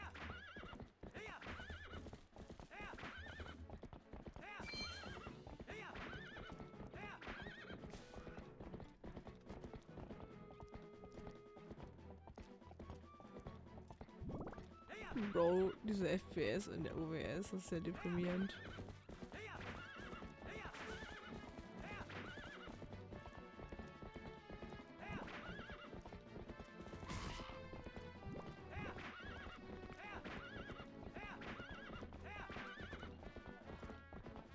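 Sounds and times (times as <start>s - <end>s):
horse galloping in video game: 0.0s - 34.5s
horse whinnying in video game: 4.6s - 5.4s, 7.3s - 7.9s, 18.4s - 22.9s, 25.1s - 26.1s, 28.7s - 33.2s
dense busy game soundtrack: 4.6s - 5.5s, 9.7s - 18.6s, 20.3s - 31.2s
speech: 15.2s - 18.9s.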